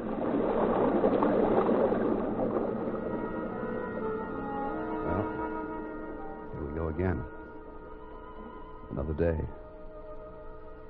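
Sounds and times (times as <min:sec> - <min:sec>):
sea water rushing against a submarine hull: 0:00.0 - 0:06.8
low tonal hum: 0:00.0 - 0:10.8
speech: 0:09.1 - 0:09.6.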